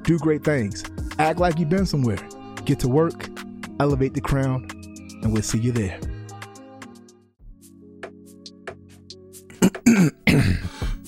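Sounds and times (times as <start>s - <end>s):
speech: 0.1s - 6.1s
person clearing throat: 9.5s - 11.0s.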